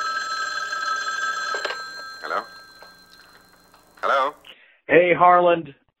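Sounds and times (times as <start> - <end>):
telephone ringing with a high electronic trill: 0.0 - 4.5
speech: 2.2 - 2.6, 4.0 - 5.8.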